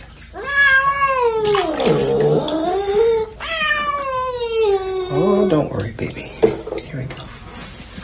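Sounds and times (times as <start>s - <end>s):
cat yowling while being bathed in water: 0.3s - 5.5s.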